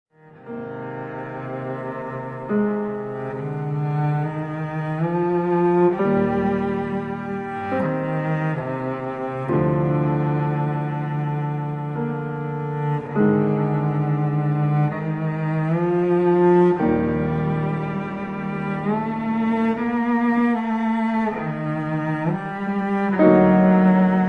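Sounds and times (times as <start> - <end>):
cello and piano sonata: 0.1 - 24.2.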